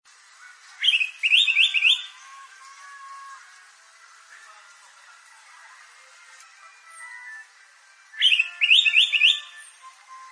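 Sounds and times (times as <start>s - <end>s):
bird song of bright, chirping notes: 0.8s - 3.3s, 8.2s - 10.2s.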